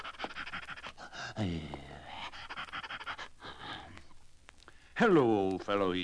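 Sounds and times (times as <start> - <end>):
old hound panting lying in the road: 0.0 - 1.4, 2.0 - 3.8
old hound strained wheezy gasp: 0.0 - 4.0
speech: 1.4 - 1.9, 5.0 - 6.0.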